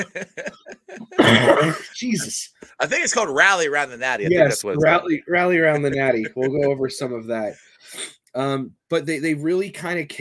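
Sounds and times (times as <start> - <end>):
laughter: 0.0 - 3.4, 4.3 - 7.5
throaty coughing: 0.5 - 2.2
speech: 1.3 - 10.1.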